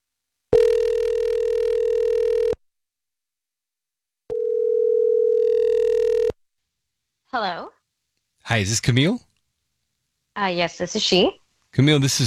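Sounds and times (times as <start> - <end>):
ringback tone of an outgoing phone call: 0.5 - 2.6, 4.3 - 6.4
speech: 7.4 - 7.7, 8.5 - 9.3, 10.4 - 12.2.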